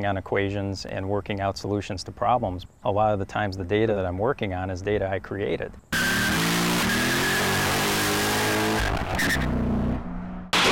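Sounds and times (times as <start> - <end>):
speech: 0.0 - 5.9
car engine revving hard as it accelerates: 6.0 - 10.6.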